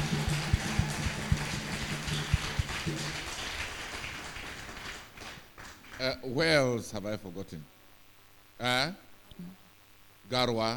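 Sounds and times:
crowd applause: 0.0s - 6.0s
speech: 6.0s - 7.8s, 8.6s - 9.6s, 10.3s - 10.7s.

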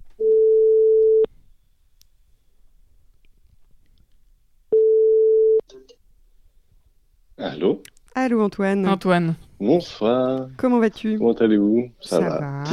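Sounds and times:
outgoing phone call ringing tone: 0.2s - 1.3s, 4.8s - 5.6s
speech: 7.6s - 12.7s.

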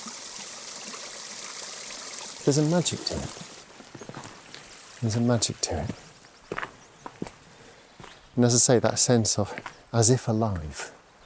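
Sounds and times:
water trickling and pouring gently over rocks in a small stream: 0.0s - 6.3s
speech: 2.5s - 3.5s, 5.0s - 6.1s, 8.4s - 11.0s.

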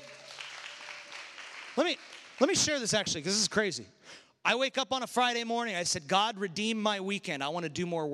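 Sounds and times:
audience applauding: 0.0s - 3.4s
speech: 1.8s - 8.1s.

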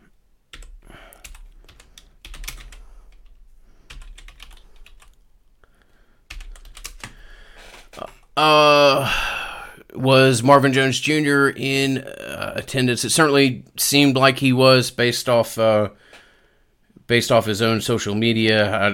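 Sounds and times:
typing on a computer keyboard: 0.5s - 5.2s, 6.3s - 7.8s
speech: 8.4s - 9.3s, 10.0s - 16.1s, 17.1s - 18.9s.

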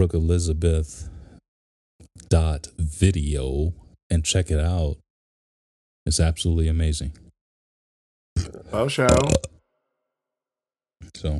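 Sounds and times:
speech: 0.0s - 1.1s, 2.2s - 5.0s, 6.0s - 7.2s, 8.6s - 9.5s, 11.0s - 11.3s
short loud throaty burp: 8.4s - 9.6s.

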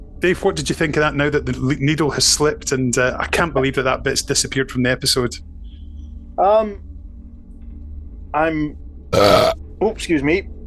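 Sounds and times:
speech: 0.2s - 5.5s, 6.4s - 6.9s, 8.4s - 10.6s
loud belch: 9.2s - 9.6s
throaty vocal bursts: 9.2s - 9.6s.

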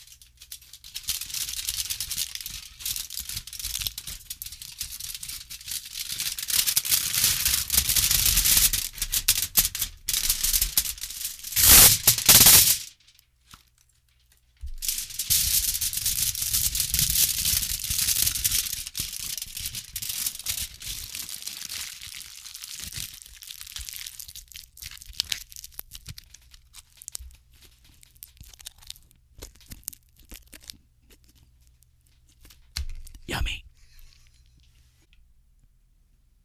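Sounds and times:
tin foil crinkled and handled: 0.0s - 34.7s.

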